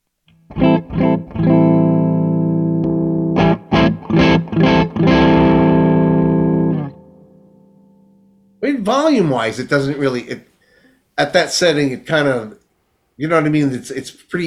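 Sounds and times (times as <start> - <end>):
electric guitar chords through an overdrive pedal at lowest drive setting: 0.3 - 8.6
speech: 8.8 - 10.5, 11.2 - 12.6, 13.2 - 14.4.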